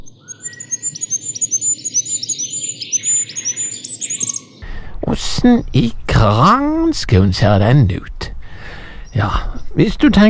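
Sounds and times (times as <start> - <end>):
goldcrest singing a high thin run of rapid notes: 0.0 - 10.2
steady low rumble of noise: 4.7 - 9.1
speech: 5.4 - 8.1, 9.2 - 10.2.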